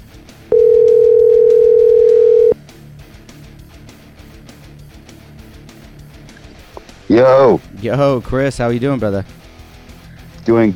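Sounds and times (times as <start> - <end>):
outgoing telephone call ringing tone: 0.5 - 2.6
speech: 7.2 - 9.4, 10.4 - 10.7.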